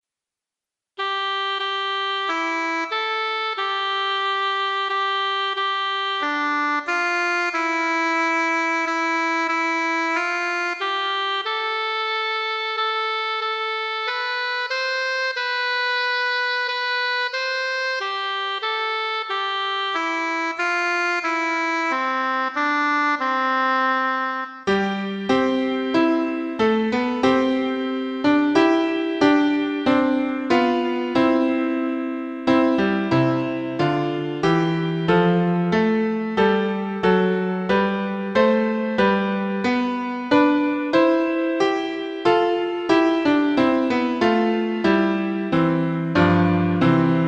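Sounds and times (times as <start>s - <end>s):
musical instrument: 1.0s - 47.2s.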